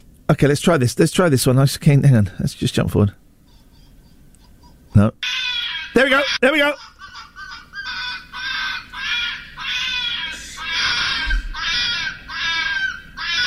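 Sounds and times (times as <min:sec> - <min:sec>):
speech: 0:00.3 - 0:03.2, 0:05.0 - 0:05.3, 0:05.9 - 0:06.9
foxes screaming during mating: 0:05.2 - 0:13.4.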